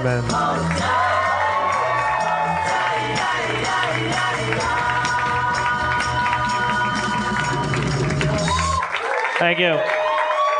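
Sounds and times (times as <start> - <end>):
speech: 0.0 - 0.9, 3.9 - 5.0, 9.4 - 10.0
live audience applauding: 0.6 - 10.5
live audience whoops and shouts: 0.9 - 3.0, 8.2 - 10.5.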